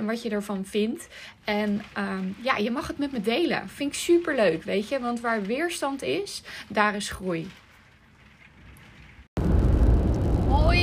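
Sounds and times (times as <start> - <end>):
speech: 0.0 - 7.6
low rumble inside a car driving home: 9.4 - 10.8.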